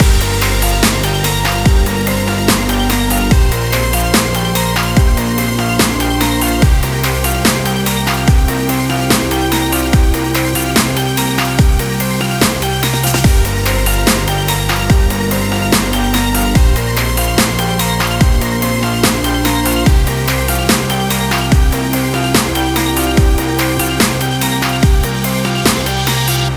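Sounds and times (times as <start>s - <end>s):
hi tech dubstep music: 0.0s - 26.5s.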